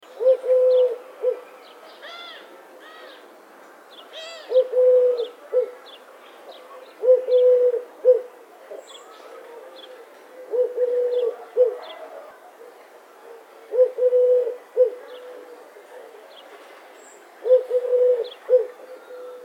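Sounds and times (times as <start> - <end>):
Eurasian collared dove cooing: 0.1 - 1.5, 4.2 - 5.9, 6.7 - 16.2, 17.4 - 19.4.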